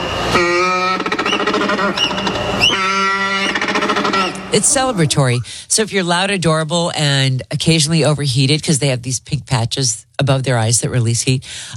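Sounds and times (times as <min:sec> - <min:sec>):
African penguin braying: 0:00.3 - 0:05.2
speech: 0:01.7 - 0:02.3, 0:04.5 - 0:11.7.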